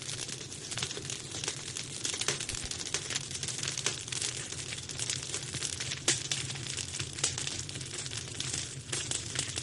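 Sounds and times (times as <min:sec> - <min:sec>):
campfire ambience: 0:00.0 - 0:09.6.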